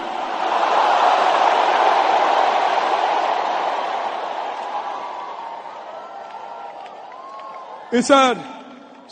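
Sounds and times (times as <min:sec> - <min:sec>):
large audience shouting together: 0:00.0 - 0:07.9
speech: 0:07.9 - 0:09.1.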